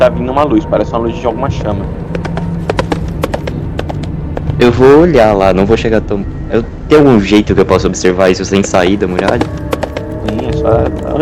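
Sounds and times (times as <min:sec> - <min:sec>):
speech: 0:00.0 - 0:02.5, 0:04.6 - 0:09.8, 0:10.6 - 0:11.2
low hum: 0:00.0 - 0:11.2
single large horse galloping with a rider: 0:02.1 - 0:04.8, 0:08.6 - 0:11.2.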